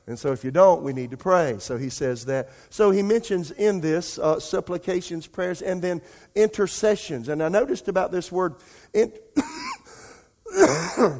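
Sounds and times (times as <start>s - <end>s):
speech: 0.1s - 9.6s, 10.5s - 11.1s
preacher clearing throat: 9.4s - 9.9s, 10.5s - 11.1s
preacher coughing: 9.4s - 11.1s.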